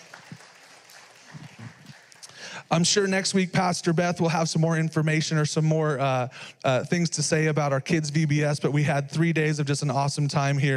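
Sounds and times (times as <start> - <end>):
audience clapping at a church: 0.0 - 2.8
speech: 2.6 - 10.7.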